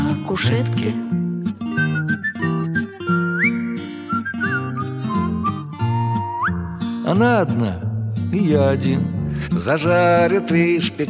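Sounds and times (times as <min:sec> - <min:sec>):
speech: 0:00.3 - 0:01.2, 0:07.1 - 0:11.0
person whistling a bright sliding melody: 0:01.7 - 0:06.9.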